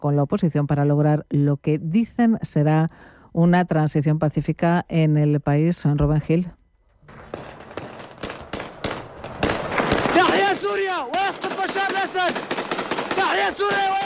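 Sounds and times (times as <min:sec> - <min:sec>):
speech: 0:00.0 - 0:07.6, 0:13.4 - 0:14.0
gunshots in city streets: 0:07.1 - 0:14.0.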